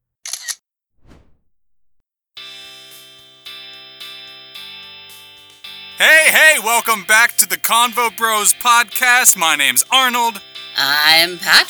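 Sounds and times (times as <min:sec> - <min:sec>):
camera shutter click taking a selfie: 0:00.2 - 0:00.6
sweeping whoosh: 0:01.0 - 0:01.6
speech: 0:06.0 - 0:11.6.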